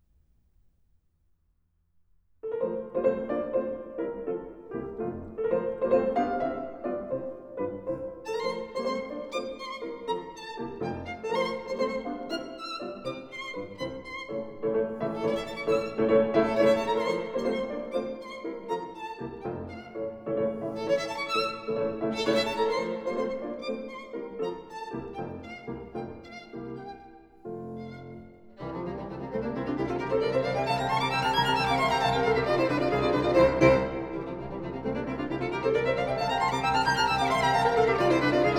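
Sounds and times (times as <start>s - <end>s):
piano playing a sonata scherzo: 2.5s - 38.5s
violin playing a sonata scherzo: 8.2s - 38.5s.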